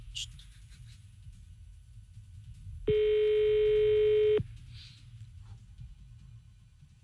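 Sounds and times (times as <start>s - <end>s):
telephone line beeps during a call to a restaurant: 2.9s - 4.4s.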